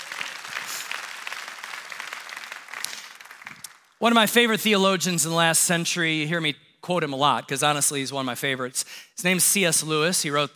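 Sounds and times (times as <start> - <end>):
audience applause: 0.0 - 4.0
speech: 4.0 - 10.5.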